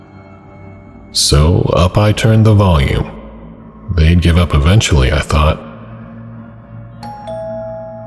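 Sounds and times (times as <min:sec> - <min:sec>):
speech: 0:01.1 - 0:03.1, 0:04.0 - 0:05.7
doorbell chime ringing: 0:07.0 - 0:08.0.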